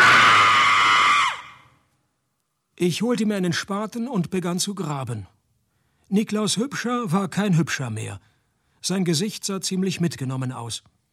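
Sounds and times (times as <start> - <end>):
person screaming: 0.0 - 1.6
speech: 2.8 - 5.4, 6.1 - 11.0.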